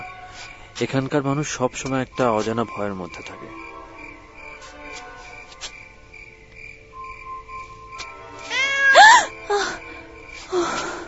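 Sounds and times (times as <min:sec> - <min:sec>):
speech: 0:00.4 - 0:03.7
cat meowing with a rising wavering pitch: 0:08.5 - 0:09.3.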